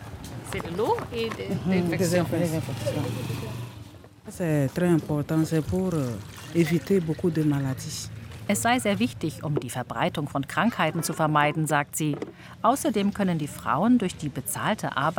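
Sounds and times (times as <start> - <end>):
speech: 0.5 - 3.6, 4.2 - 15.1
disinfectant poured into a bucket of water: 5.2 - 7.7.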